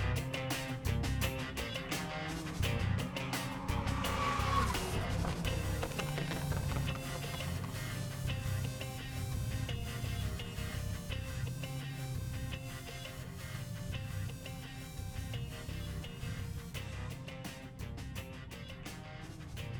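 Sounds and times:
race car engines roaring at a motor racing circuit: 0.0s - 19.7s
race car tire squeal: 1.7s - 7.3s
race car sweeping past: 2.0s - 8.0s.

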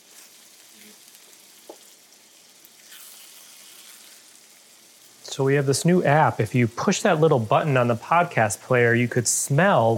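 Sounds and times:
chorizo sizzling and rendering its fat in a pan with no added oil: 0.0s - 9.9s
speech: 5.4s - 9.9s.

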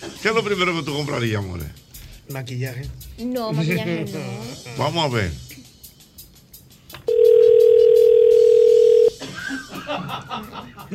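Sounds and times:
speech: 0.2s - 5.4s, 9.9s - 10.9s
steady telephone line tone: 7.1s - 9.1s
laughter: 9.2s - 10.9s.

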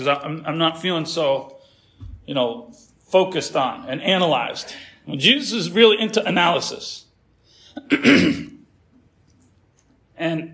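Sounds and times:
speech: 0.0s - 1.6s, 2.3s - 7.0s, 7.8s - 8.5s, 10.2s - 10.5s
throat clearing: 7.8s - 8.6s.

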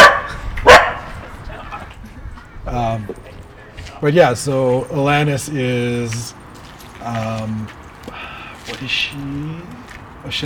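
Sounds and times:
dog barking: 0.0s - 1.2s
speech: 2.7s - 3.4s, 4.0s - 6.4s, 7.0s - 8.2s, 8.8s - 10.4s.

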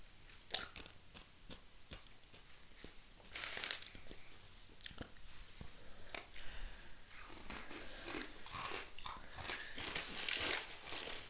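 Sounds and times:
dried uncooked pasta noodles being crunched and chewed: 0.3s - 5.1s, 7.2s - 11.2s.

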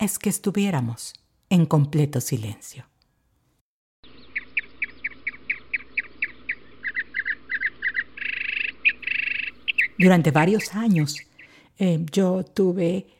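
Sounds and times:
speech: 0.0s - 2.9s, 10.0s - 13.1s
bird singing and trilling: 4.0s - 11.6s.

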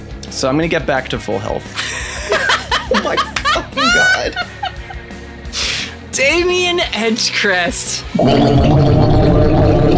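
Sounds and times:
speech: 0.4s - 2.0s, 2.9s - 4.7s, 6.2s - 9.3s
laughter: 1.6s - 6.0s
wet gurgling slurping noise from a monstrous mass of green spikes: 8.1s - 9.9s.

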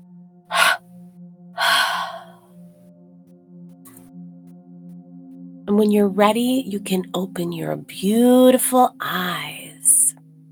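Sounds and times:
breath in through the nose and out through the mouth: 0.5s - 0.8s, 1.6s - 2.4s
speech: 5.8s - 9.4s.

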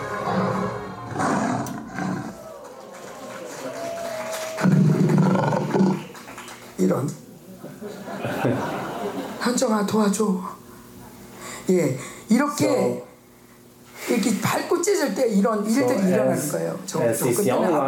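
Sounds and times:
young lion roaring: 0.2s - 2.4s, 4.6s - 6.1s
speech: 7.0s - 7.2s, 9.7s - 10.6s, 11.7s - 13.1s, 14.4s - 17.8s
laughter: 7.3s - 9.5s, 17.0s - 17.8s.

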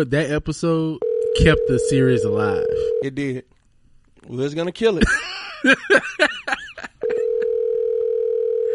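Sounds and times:
speech: 0.0s - 3.6s, 4.2s - 6.6s
phone dialing tones: 1.0s - 3.1s, 7.0s - 8.7s.

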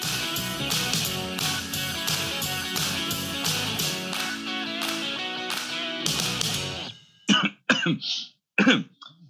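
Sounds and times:
busy music: 0.0s - 7.0s
person coughing harshly: 7.3s - 9.2s
speech: 7.9s - 8.9s.

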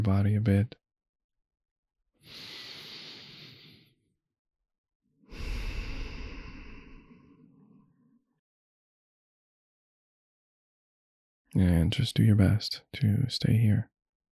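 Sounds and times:
speech: 0.0s - 0.8s, 11.6s - 13.9s
deep breath: 2.2s - 4.0s, 5.3s - 8.1s.

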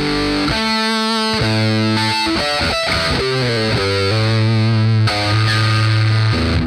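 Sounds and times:
electric guitar through gated fuzz distortion pedal: 0.0s - 6.6s.

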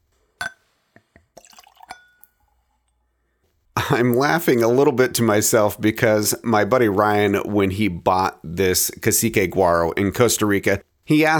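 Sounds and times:
sharp glassy clink: 0.4s - 2.5s
faint glass ring: 0.4s - 3.0s
liquor poured into a Glencairn whiskey glass: 1.0s - 2.5s
speech: 3.9s - 11.3s.

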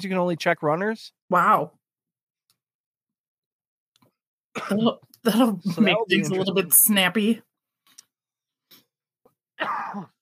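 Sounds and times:
speech: 0.0s - 1.8s, 4.6s - 7.5s, 9.6s - 10.1s
person coughing after drinking water: 4.6s - 5.0s, 9.6s - 10.2s.

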